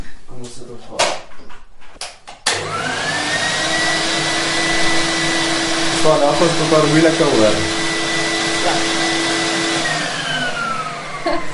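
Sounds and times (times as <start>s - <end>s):
speech: 0.4s - 1.2s, 6.0s - 7.8s
screen-printing vacuum table suction motor running: 2.5s - 11.5s.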